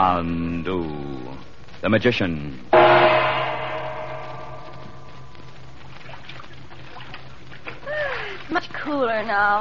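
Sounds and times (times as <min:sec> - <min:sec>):
speech: 0:00.1 - 0:01.1, 0:01.8 - 0:03.0, 0:09.2 - 0:09.5
felucca boat moving through river water: 0:04.8 - 0:09.5.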